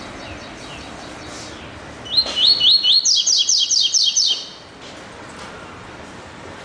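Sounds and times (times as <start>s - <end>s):
double-collared seedeater singing whistles and trills: 2.1s - 4.6s.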